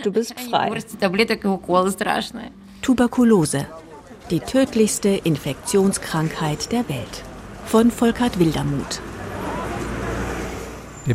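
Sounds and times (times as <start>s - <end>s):
speech: 0.0s - 9.1s
cars passing on a busy city street: 0.9s - 11.1s
faint indistinct voices: 1.8s - 11.1s
low rumble of engines in city street traffic: 3.8s - 11.1s.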